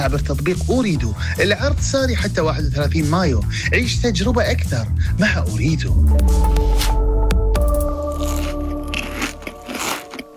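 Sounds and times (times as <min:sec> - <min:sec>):
speech: 0:00.0 - 0:07.0
crispy snack bitten and chewed: 0:07.8 - 0:10.3.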